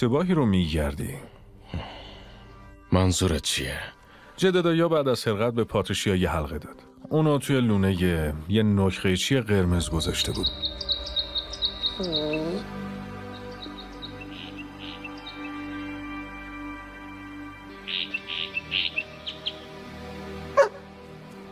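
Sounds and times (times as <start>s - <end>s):
speech: 0.0s - 1.9s, 2.9s - 10.9s, 12.0s - 13.0s
low whining call: 9.8s - 14.2s
small bird chirping: 10.0s - 16.0s, 17.8s - 19.7s.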